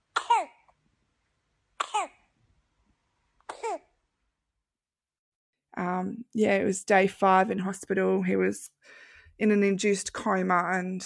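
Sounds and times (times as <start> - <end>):
baby coughing: 0.1 - 0.7, 1.8 - 2.3, 3.4 - 4.0
speech: 5.8 - 11.0.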